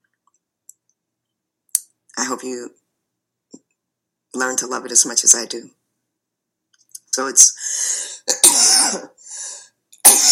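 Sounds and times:
speech: 0:02.2 - 0:02.8, 0:04.4 - 0:05.8, 0:07.2 - 0:07.8
person with a chronic cough coughing harshly: 0:08.1 - 0:09.2, 0:10.0 - 0:10.2.

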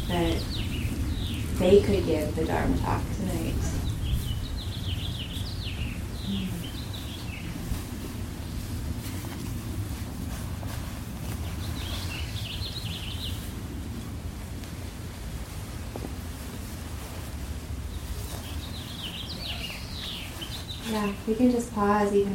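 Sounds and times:
birds singing outdoors: 0:00.0 - 0:08.8, 0:11.3 - 0:13.6, 0:17.9 - 0:22.3
wind buffeting the microphone: 0:00.0 - 0:22.3
speech: 0:01.6 - 0:03.8, 0:21.0 - 0:22.3.

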